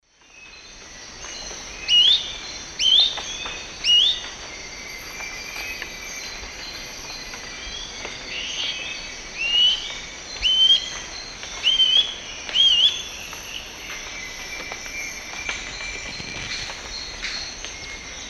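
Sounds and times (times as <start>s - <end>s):
Tolmomyias poliocephalus song in South American eastern lowlands: 0.1s - 18.2s.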